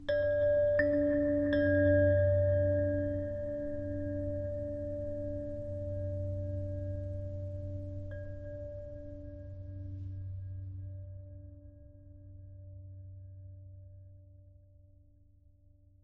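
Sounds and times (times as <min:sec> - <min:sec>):
low ambient abstract chimes: 0:00.0 - 0:11.8.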